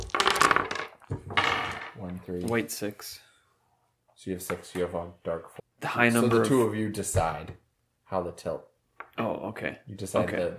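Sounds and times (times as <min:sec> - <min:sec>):
dice clattering across a hard tabletop: 0:00.0 - 0:02.0
speech: 0:02.2 - 0:03.3, 0:04.2 - 0:10.5.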